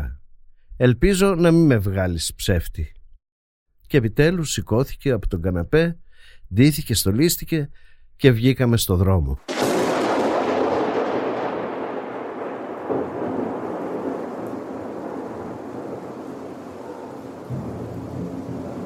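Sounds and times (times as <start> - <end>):
speech: 0.8 - 3.0, 3.9 - 9.6
heavy pouring rain: 9.5 - 18.8
rolling thunder in a fierce thunderstorm: 9.5 - 18.8.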